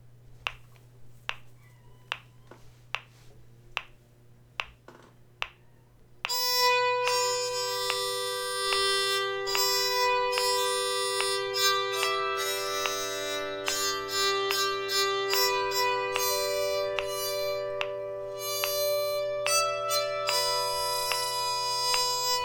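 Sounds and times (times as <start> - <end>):
spiritual melody played on a bowed psaltery: 6.3 - 22.4.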